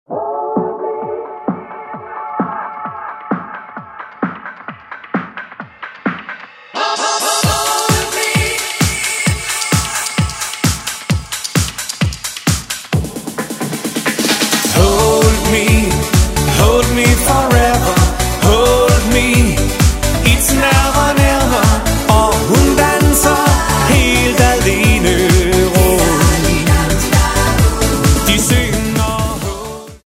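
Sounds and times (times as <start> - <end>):
medley of hit songs: 0.1 - 30.0.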